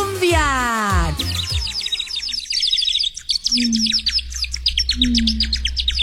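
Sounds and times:
blackbirds chirping and singing: 0.1 - 6.0
faint rumble: 3.5 - 6.0.

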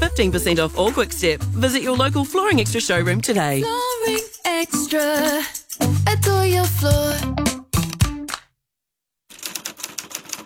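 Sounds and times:
speech: 0.2 - 5.6, 6.4 - 7.4
keystrokes on a typewriter saved from landfill: 9.3 - 10.4.

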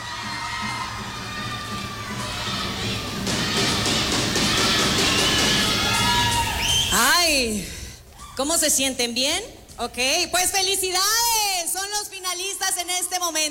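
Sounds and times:
studio audience cheering and shouting: 0.0 - 7.3
speech: 8.4 - 11.3, 12.3 - 13.4.

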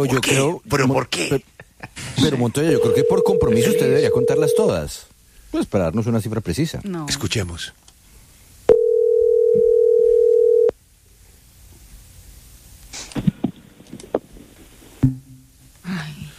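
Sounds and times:
speech: 0.0 - 7.8
telephone dial tone after a call is hung up: 2.8 - 4.7, 8.7 - 10.7.

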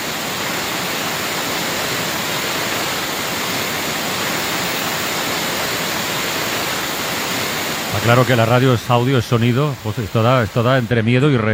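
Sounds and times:
waterfall roar after heavy rains: 0.0 - 11.5
speech: 8.0 - 11.5.

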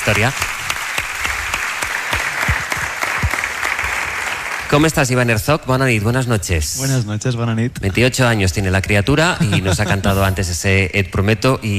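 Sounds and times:
speech: 0.0 - 0.6, 4.7 - 11.7
studio audience applause: 0.0 - 5.1
laughter: 7.8 - 10.5.

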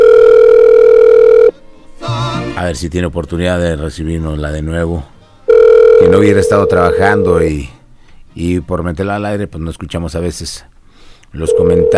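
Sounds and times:
electronic telephone tone of a call coming through: 0.0 - 1.5, 5.5 - 7.5, 11.4 - 11.9
speech: 2.7 - 5.1, 6.0 - 7.8, 8.4 - 10.7, 11.3 - 11.9.

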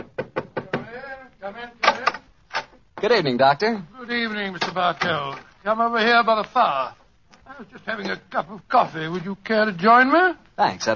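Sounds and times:
sharp knocks on a study door: 0.0 - 1.0
speech: 1.4 - 2.2, 3.0 - 10.9.

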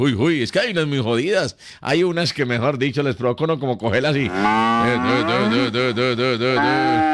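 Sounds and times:
speech: 0.0 - 7.1
cow mooing while being milked: 4.3 - 5.8, 6.6 - 7.1
laughter: 4.7 - 7.1.

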